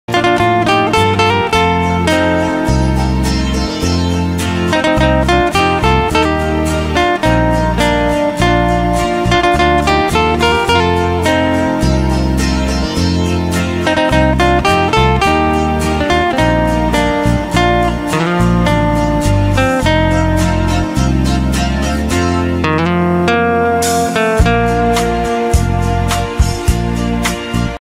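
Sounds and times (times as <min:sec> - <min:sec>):
instrumental acoustic guitar music: 0:00.1 - 0:27.7.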